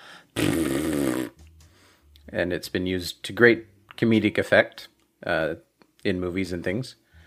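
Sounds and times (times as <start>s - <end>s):
raspberry blown with the tongue out: 0.4s - 1.7s
speech: 2.3s - 7.0s.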